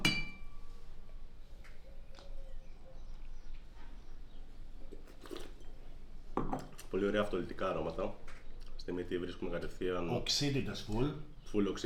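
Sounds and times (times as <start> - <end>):
wine glasses of Blanc de Blanc Chardonnay clinking in a toast: 0.0 - 0.6
steady noisy background: 0.0 - 11.8
speech: 6.9 - 11.8.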